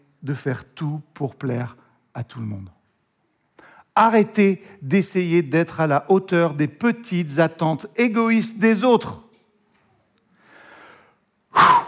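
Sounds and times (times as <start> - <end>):
speech: 0.2 - 2.8, 4.0 - 9.2
breathy exhale blown out hard: 10.4 - 11.8.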